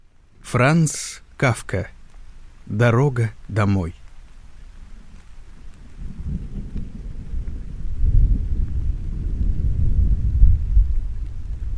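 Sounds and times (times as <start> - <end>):
steady rain: 0.0 - 11.7
speech: 0.5 - 2.0, 2.7 - 4.0
deep rolling thunder: 5.8 - 11.7.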